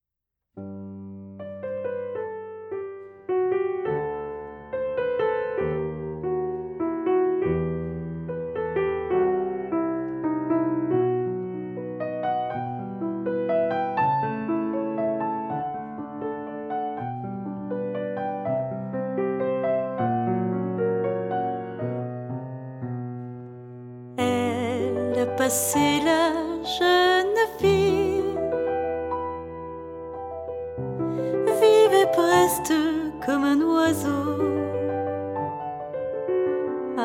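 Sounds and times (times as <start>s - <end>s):
piano: 0.0s - 37.0s
voice: 24.2s - 28.4s, 31.5s - 34.9s.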